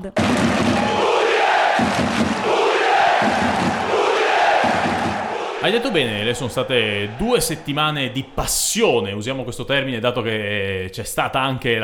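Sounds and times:
speech: 0.0s - 0.8s, 5.6s - 11.8s
football fans chanting in the north stand of a stadium: 0.2s - 8.5s.

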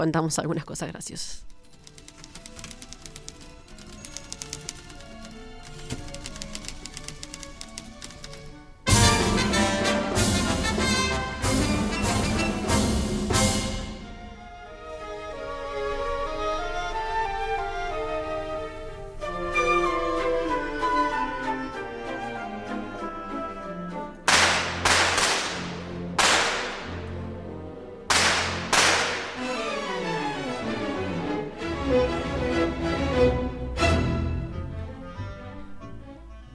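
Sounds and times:
speech: 0.0s - 1.6s
typewriter clacks: 1.6s - 8.6s
orchestral ballet music: 3.6s - 36.5s
gunshot sound effects: 24.3s - 27.0s, 28.1s - 29.4s.

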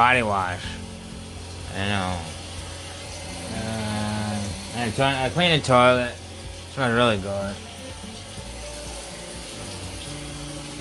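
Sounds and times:
speech: 0.0s - 0.8s, 1.8s - 2.3s, 4.8s - 6.2s, 6.8s - 7.7s
water running from a tap while someone rinses their face: 0.0s - 10.7s.

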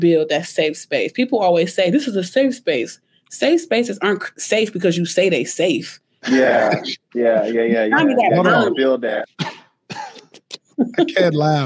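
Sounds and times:
speech: 0.0s - 9.6s, 10.8s - 11.6s
voiced strained throat-clearing rasp: 6.2s - 7.7s, 9.4s - 10.6s
short rough coughs: 6.2s - 8.7s, 9.4s - 11.3s.

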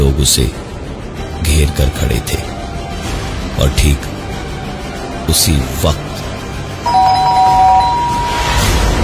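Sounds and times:
speech: 0.2s - 0.8s, 1.5s - 2.6s, 3.6s - 4.1s, 5.3s - 6.0s
doorbell ringing with electronic chime: 6.9s - 8.9s.

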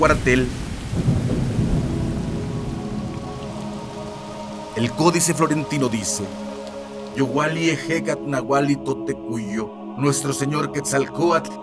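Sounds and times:
speech: 0.0s - 1.1s, 4.8s - 6.5s, 7.2s - 11.6s
deep rumble of thunder: 0.0s - 4.6s
steady heavy rain: 0.0s - 8.1s.

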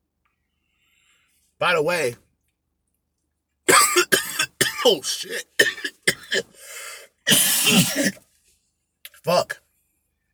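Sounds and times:
speech: 1.6s - 2.2s, 4.8s - 5.6s, 6.3s - 6.5s, 7.3s - 8.2s, 9.2s - 9.6s
harsh coughing fit with hacking coughs: 3.7s - 8.2s
long raspy wheeze during a coughing fit: 4.0s - 8.2s.

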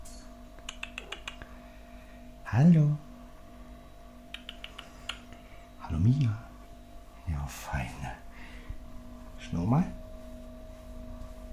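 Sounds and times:
refrigerator humming in a kitchen: 0.0s - 11.5s
speech: 2.6s - 3.0s, 6.0s - 6.4s, 9.5s - 10.0s
soft clicks: 4.3s - 5.4s.

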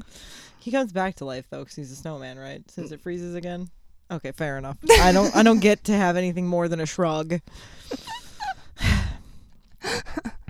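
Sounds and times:
heavy breaths blowing into a microphone: 0.0s - 0.7s, 7.5s - 10.4s
speech: 0.6s - 8.2s.

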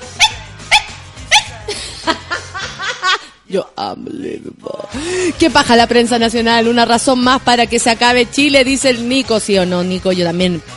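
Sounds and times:
small puppy barking in high yips: 0.2s - 1.6s
laughter: 1.6s - 3.4s
speech: 3.5s - 10.7s.

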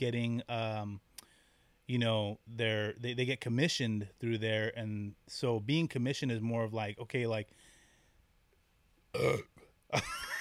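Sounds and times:
speech: 0.0s - 1.1s, 1.9s - 7.7s, 9.2s - 10.3s
person burping: 9.1s - 9.7s.

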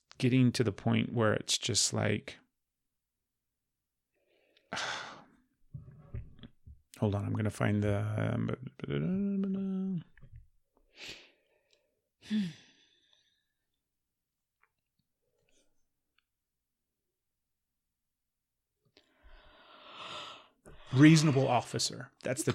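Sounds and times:
speech: 0.2s - 2.4s, 4.7s - 5.0s, 7.0s - 10.1s, 11.0s - 11.2s, 12.2s - 12.6s, 20.9s - 22.5s
person yawning: 9.0s - 10.1s.

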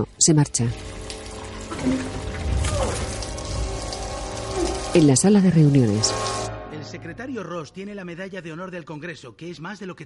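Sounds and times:
speech: 0.0s - 1.0s, 1.8s - 3.0s, 4.9s - 10.0s
water running out of a kitchen sink tap: 0.0s - 6.5s.

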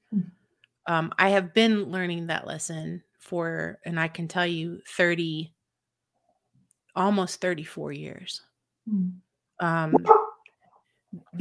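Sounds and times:
speech: 0.1s - 5.6s, 7.0s - 10.2s
puppy giving bright high yips: 10.0s - 10.4s.

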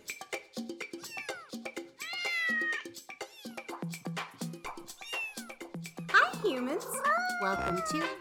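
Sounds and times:
light plucky music: 0.1s - 8.1s
cat meowing: 1.1s - 3.7s, 5.0s - 5.6s, 6.8s - 8.1s
speech: 6.4s - 8.1s.

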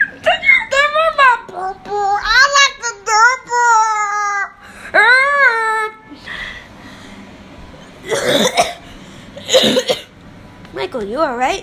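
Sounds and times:
high wavering vocal sound: 0.0s - 6.2s
harsh coughing from someone coughing for three weeks: 8.0s - 10.1s.

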